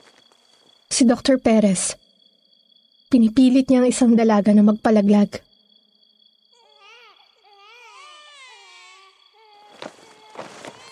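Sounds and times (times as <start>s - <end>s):
speech: 1.0s - 2.0s, 3.1s - 5.5s
several babies wailing and crying: 6.6s - 10.9s.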